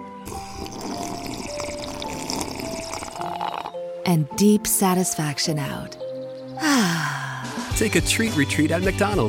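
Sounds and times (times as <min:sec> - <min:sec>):
iced coffee gurgling in a straw: 0:00.2 - 0:03.8
slurping iced coffee through a straw: 0:00.2 - 0:03.8
speech: 0:04.1 - 0:06.0, 0:07.8 - 0:09.2.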